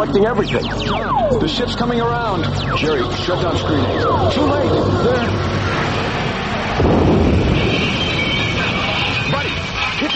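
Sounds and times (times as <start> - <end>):
speech: 0.0 - 5.9
rumbling background: 0.0 - 10.0
loud crackling lightning blast sound effect: 4.8 - 10.1.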